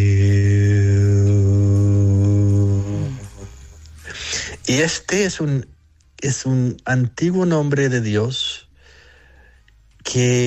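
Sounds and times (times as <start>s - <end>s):
low voice chanting the spiritual word Hu: 0.0s - 4.9s
speech: 4.7s - 8.6s, 10.1s - 10.4s.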